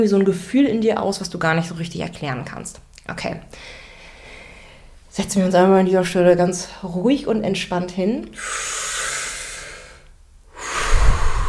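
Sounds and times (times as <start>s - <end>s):
speech: 0.0s - 3.8s, 5.2s - 9.0s
deep breath taken while seated during a relaxation exercise: 3.5s - 5.0s, 8.4s - 11.4s.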